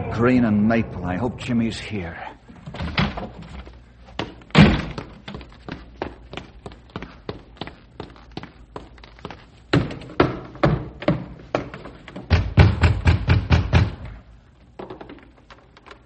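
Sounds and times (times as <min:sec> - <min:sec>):
speech: 0:00.2 - 0:02.9
fists pounding on a house door: 0:09.7 - 0:14.1.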